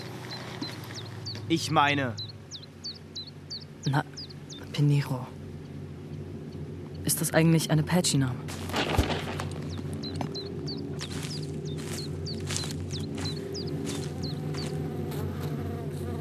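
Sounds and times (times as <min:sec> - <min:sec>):
faint high bird chirps: 0:00.0 - 0:07.1, 0:09.5 - 0:14.8
bees buzzing around their nest outdoors: 0:00.0 - 0:16.2
speech: 0:01.5 - 0:02.2, 0:03.8 - 0:04.2, 0:04.8 - 0:05.4, 0:07.1 - 0:09.0.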